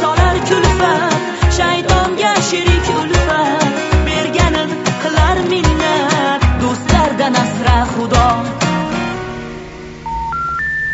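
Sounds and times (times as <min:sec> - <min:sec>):
music: 0:00.0 - 0:10.9
electronic beeps of a telephone being dialed: 0:10.1 - 0:10.9.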